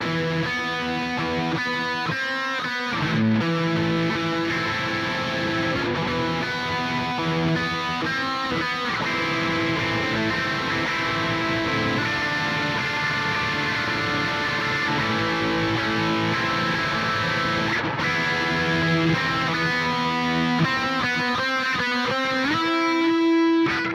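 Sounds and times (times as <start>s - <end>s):
heavy guitars holding loop: 0.0s - 23.9s.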